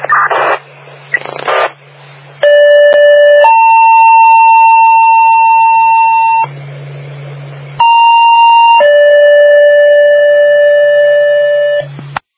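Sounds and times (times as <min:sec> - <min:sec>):
hissing bursts of radio static: 0:00.0 - 0:02.4
electronic fire siren during radio siren test by fire dispatch: 0:02.4 - 0:06.5, 0:07.8 - 0:11.9.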